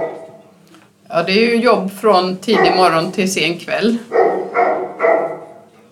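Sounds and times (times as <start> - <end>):
dog barking at a dog boarding kennel: 0.0 - 0.4, 2.5 - 3.1, 4.0 - 5.8
speech: 1.1 - 4.3.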